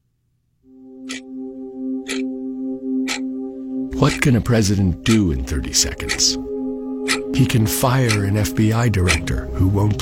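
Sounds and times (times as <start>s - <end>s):
low ominous synthesizer drone: 0.7s - 9.9s
clock ticking sharply: 1.0s - 1.3s, 2.0s - 2.3s, 3.0s - 3.3s, 3.9s - 6.4s, 7.0s - 9.9s
speech: 4.0s - 6.6s, 7.3s - 9.9s.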